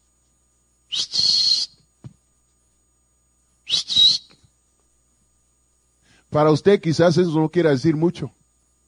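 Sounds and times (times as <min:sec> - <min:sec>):
person whistling a shrill two-note call: 0:00.9 - 0:01.8, 0:03.7 - 0:04.5
speech: 0:06.3 - 0:08.4.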